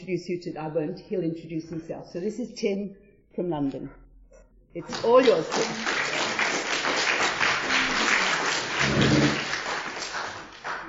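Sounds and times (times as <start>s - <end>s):
speech: 0.1s - 4.0s, 4.7s - 6.0s
audience applause: 4.9s - 10.8s.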